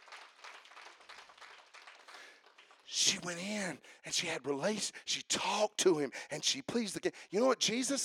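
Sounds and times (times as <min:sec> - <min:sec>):
audience clapping hands: 0:00.0 - 0:03.7
speech: 0:02.9 - 0:08.0.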